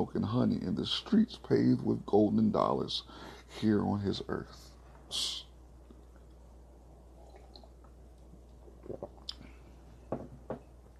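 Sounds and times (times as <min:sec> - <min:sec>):
speech: 0:00.0 - 0:05.5
quiet low hum: 0:00.0 - 0:10.9
person sipping coffee: 0:07.0 - 0:09.9.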